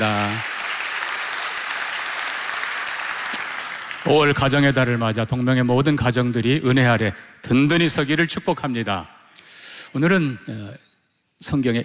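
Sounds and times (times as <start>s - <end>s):
large church audience applauding a youth group: 0.0s - 5.0s
speech: 4.0s - 9.2s, 9.9s - 11.8s.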